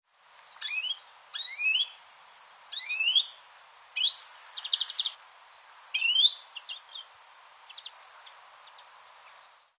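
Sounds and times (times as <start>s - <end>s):
European greenfinch Chloris chloris giving sharp sweeping notes and buzzy chatter: 0.6s - 2.0s, 2.7s - 3.4s, 4.0s - 9.5s.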